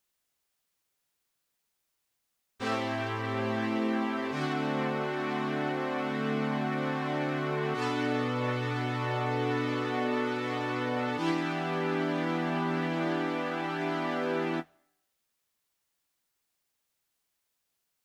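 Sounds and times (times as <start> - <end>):
synth pad: 2.6 - 14.6.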